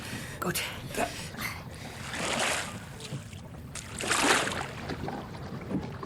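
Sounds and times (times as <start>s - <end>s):
broad surges of churned water: 0.0s - 6.0s
speech: 0.4s - 1.5s
paddle strokes splashing as three people paddle a small boat: 1.8s - 6.0s.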